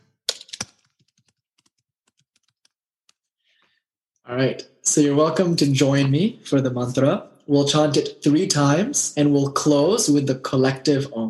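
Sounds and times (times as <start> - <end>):
typing on a computer keyboard: 0.3 - 3.2
speech: 4.3 - 11.2.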